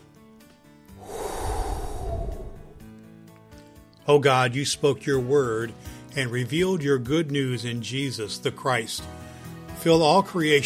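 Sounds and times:
deep breath: 1.0 - 2.9
speech: 4.1 - 9.2, 9.8 - 10.6.

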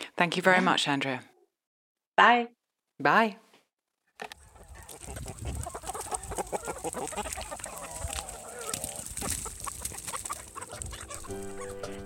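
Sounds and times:
speech: 0.2 - 1.3, 2.2 - 3.4
flock of chickens clucking and squawking: 4.4 - 12.0.

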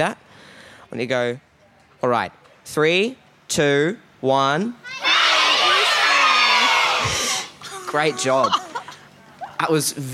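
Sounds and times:
speech: 0.0 - 0.2, 0.9 - 5.0, 7.9 - 8.6, 9.6 - 10.1
crowd yelling a greeting and cheering together: 4.9 - 8.6
laughter: 6.5 - 9.6.

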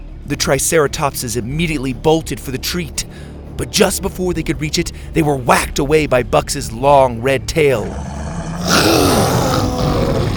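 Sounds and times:
speech: 0.2 - 9.3
loud deep dinosaur roar: 7.8 - 10.3.

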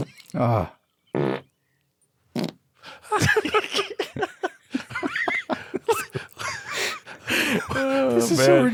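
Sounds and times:
speech: 0.3 - 0.8, 7.8 - 8.7
short low buzzy fart sounds: 1.1 - 1.5, 2.3 - 2.6
people laughing excitedly: 3.0 - 8.7.

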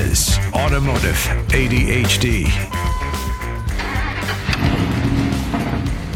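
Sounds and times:
speech: 0.1 - 3.0
Dodge Dakota 4.7-liter V8 truck engine starting and revving: 2.8 - 6.1.

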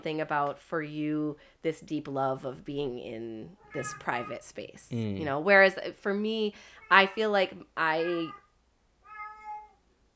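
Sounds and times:
speech: 0.0 - 8.4
cat meowing: 3.6 - 4.4, 8.0 - 9.8.

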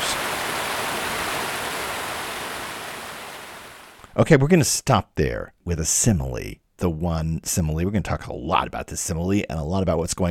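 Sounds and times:
great waterfall roaring above San Benedetto dell'Alpe: 0.0 - 4.0
speech: 4.2 - 10.2.

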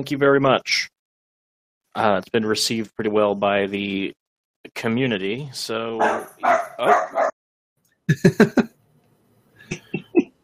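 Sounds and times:
speech: 0.0 - 0.9, 2.0 - 7.3, 8.1 - 8.7
small dog barking: 6.0 - 7.4
laughter: 8.1 - 8.7, 9.7 - 10.4.

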